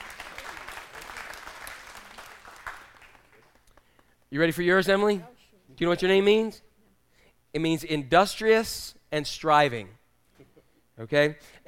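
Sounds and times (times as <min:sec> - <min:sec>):
crowd of people applauding: 0:00.0 - 0:04.2
speech: 0:04.3 - 0:06.7, 0:07.5 - 0:10.0, 0:11.0 - 0:11.6.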